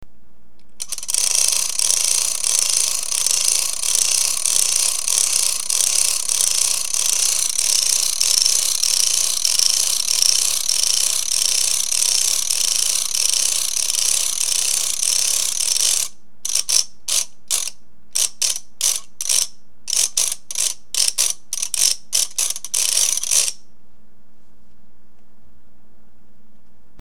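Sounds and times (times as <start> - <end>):
ratchet clicking: 0.8 - 23.6.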